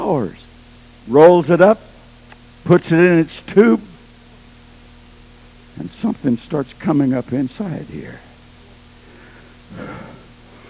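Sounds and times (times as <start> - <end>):
low steady hum: 0.0 - 10.6
speech: 0.1 - 0.4, 1.0 - 1.9, 2.6 - 3.9, 5.8 - 8.3
deep breathy exhale during a deep breathing exercise: 9.0 - 10.6.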